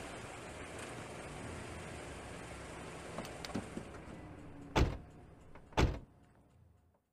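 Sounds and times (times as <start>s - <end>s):
electric car low rumble: 0.0s - 7.1s
loud thuds: 4.8s - 5.0s, 5.6s - 6.0s.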